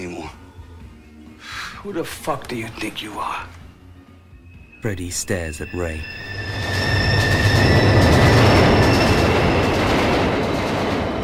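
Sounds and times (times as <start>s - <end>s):
speech: 1.8s - 3.6s, 4.8s - 6.3s
high-pitched subway train wheel squeal: 4.4s - 11.2s
subway train rumbling: 5.6s - 11.2s.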